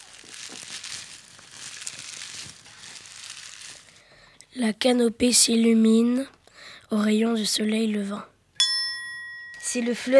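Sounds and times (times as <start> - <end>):
dry leaves rustling and crunching: 0.0 - 4.0
speech: 4.6 - 8.3, 9.7 - 10.1.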